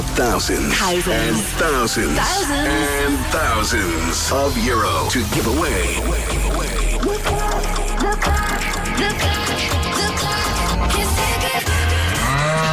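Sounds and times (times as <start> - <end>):
busy loud music bed: 0.0 - 12.7
speech: 0.2 - 10.1
cow mooing: 12.0 - 12.7.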